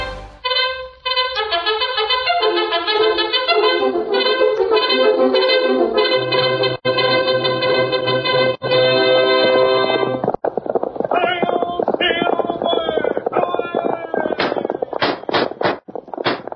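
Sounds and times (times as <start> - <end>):
loud brassy orchestral music of an old radio drama: 0.0 - 9.9
galloping horse hoofbeats: 10.2 - 16.5
sharp punchy cracks: 14.4 - 16.5.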